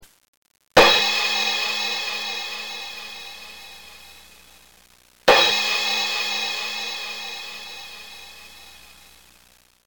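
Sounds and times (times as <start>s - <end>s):
percussion: 0.8s - 4.7s, 5.3s - 9.3s
cymbals: 0.8s - 9.3s.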